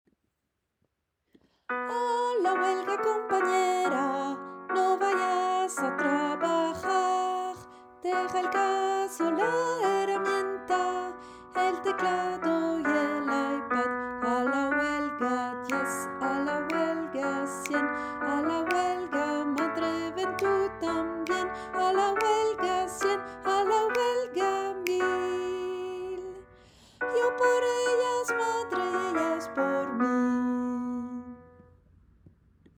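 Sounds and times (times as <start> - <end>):
soprano voice singing in a choir: 1.8 - 31.5.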